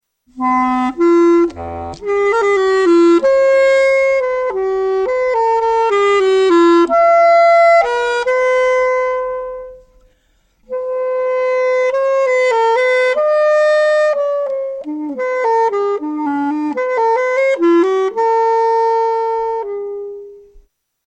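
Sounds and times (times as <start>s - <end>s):
basset horn: 0.4s - 20.4s.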